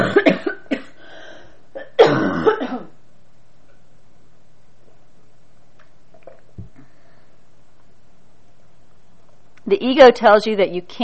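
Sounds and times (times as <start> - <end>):
person coughing: 0.0 - 1.1, 1.8 - 3.0
speech: 9.7 - 11.0.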